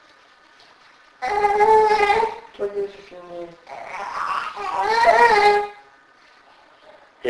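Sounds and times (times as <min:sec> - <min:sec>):
baby crying in strained wavering wails: 0:01.2 - 0:02.5, 0:03.7 - 0:05.9.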